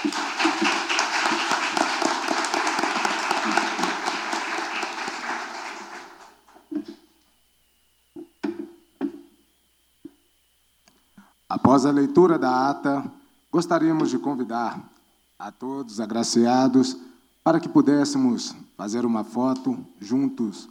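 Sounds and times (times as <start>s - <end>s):
crowd applauding: 0.0s - 6.7s
scattered isolated claps from individuals: 0.0s - 6.7s
speech: 11.7s - 20.6s.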